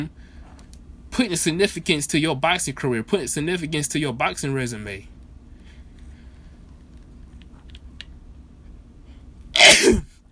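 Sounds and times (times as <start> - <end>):
speech: 0.0 - 0.2, 1.2 - 5.1
person sneezing: 9.6 - 10.1.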